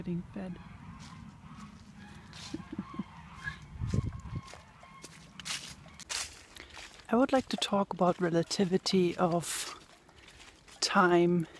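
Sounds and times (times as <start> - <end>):
speech: 0.0 - 1.2, 7.1 - 9.8, 10.9 - 11.5
steady outdoor hum: 0.0 - 7.1
geese honking: 0.0 - 11.5
laughter: 2.4 - 3.2.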